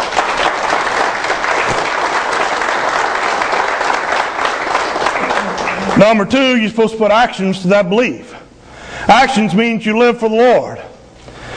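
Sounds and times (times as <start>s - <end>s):
crowd applauding: 0.0s - 6.6s
speech: 6.0s - 8.3s, 9.1s - 10.8s.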